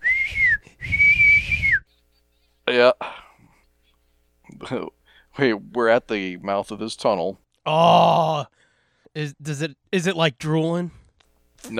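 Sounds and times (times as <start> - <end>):
breathy hollow whistle of air blown across a bottle top: 0.0 - 1.9
speech: 4.7 - 8.6, 9.2 - 11.0.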